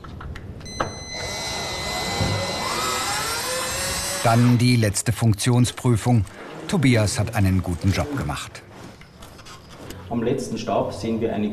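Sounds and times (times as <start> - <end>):
power screwdriver fastening roller-shutter guide rails with inner brushes to a wall: 0.8 - 4.6
speech: 4.2 - 8.7, 10.1 - 11.5.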